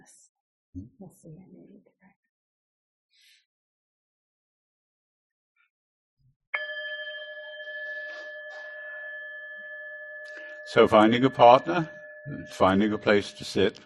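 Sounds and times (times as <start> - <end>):
speech: 0.8 - 2.3, 10.8 - 13.8
bell ringing: 6.6 - 13.8.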